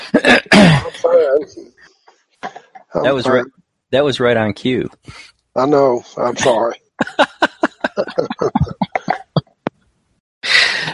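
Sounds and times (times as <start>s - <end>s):
man clearing throat: 0.0s - 1.3s, 7.9s - 9.6s
man coughing: 0.0s - 1.3s, 6.4s - 6.6s, 7.8s - 9.6s
speech: 3.0s - 6.8s, 7.9s - 8.7s
laughter: 6.2s - 9.6s.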